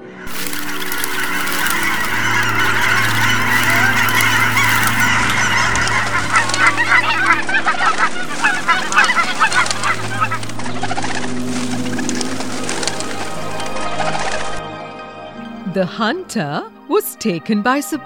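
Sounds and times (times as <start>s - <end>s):
flock of geese honking as they fly away: 0.3s - 14.6s
speech: 15.8s - 18.0s.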